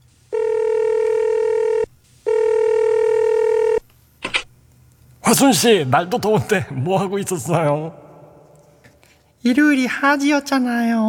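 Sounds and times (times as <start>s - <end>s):
phone line ringing tone: 0.3s - 3.8s
speech: 5.3s - 8.0s, 9.4s - 11.0s.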